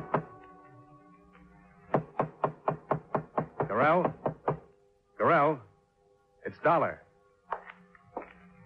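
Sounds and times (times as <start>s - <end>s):
firm knocks on a wooden hotel room door: 1.9s - 4.7s
speech: 3.7s - 4.2s, 5.3s - 5.7s, 6.5s - 7.0s.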